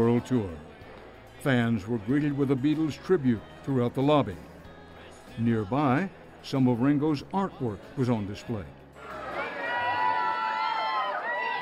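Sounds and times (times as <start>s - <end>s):
speech: 0.0s - 0.7s, 1.4s - 4.5s, 5.4s - 8.8s
crowd of fans roaring and cheering at a hotel and casino: 9.0s - 11.6s
many high voices screaming and shouting: 9.0s - 11.6s.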